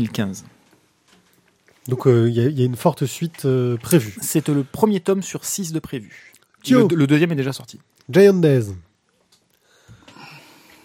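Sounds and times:
speech: 0.0s - 0.5s, 1.9s - 8.9s
man drawing a deep breath into the microphone: 9.6s - 10.8s.

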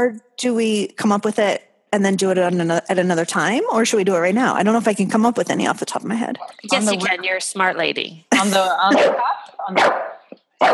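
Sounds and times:
speech: 0.0s - 10.0s
bulldog barking: 8.9s - 10.7s.

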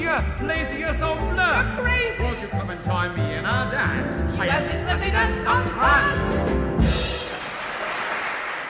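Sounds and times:
speech: 0.1s - 6.7s
audience applause: 7.2s - 8.6s.

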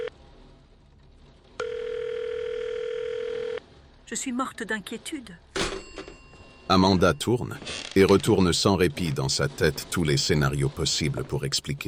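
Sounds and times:
phone ringback tone on an unanswered call: 1.6s - 3.6s, 5.6s - 8.1s
speech: 4.1s - 5.5s, 6.7s - 11.8s.

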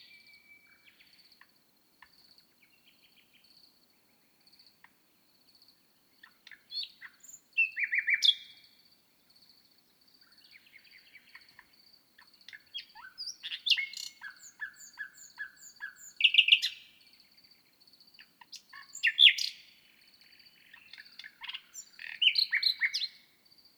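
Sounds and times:
common nightingale singing at the foot of a bush: 0.0s - 1.2s, 6.1s - 8.8s, 10.3s - 17.1s, 18.2s - 23.7s.

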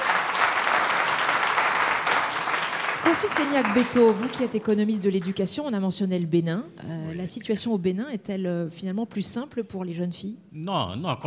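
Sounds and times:
audience applause: 0.0s - 5.3s
speech: 3.1s - 11.2s.

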